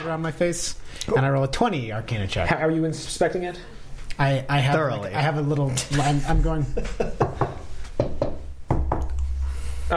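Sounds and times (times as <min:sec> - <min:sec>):
speech: 0:00.0 - 0:07.3
knocking on wood: 0:07.2 - 0:09.1.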